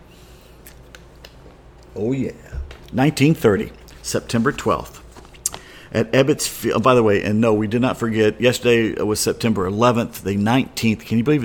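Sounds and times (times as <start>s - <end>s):
faint low hum: 0.0s - 11.4s
speech: 2.0s - 5.0s, 5.9s - 11.4s
person sipping and swallowing beer: 3.7s - 4.0s.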